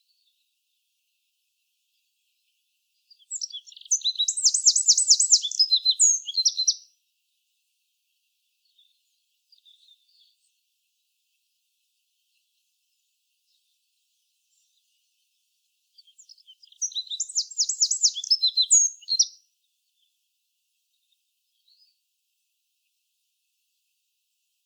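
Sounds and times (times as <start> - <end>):
Eurasian wren Troglodytes troglodytes song: 2.0 - 7.0, 8.0 - 20.2.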